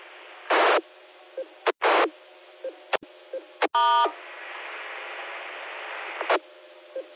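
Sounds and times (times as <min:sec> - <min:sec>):
radio transceiver steady hiss: 0:00.0 - 0:00.8, 0:01.6 - 0:02.1, 0:04.1 - 0:07.1
speech: 0:03.7 - 0:04.3.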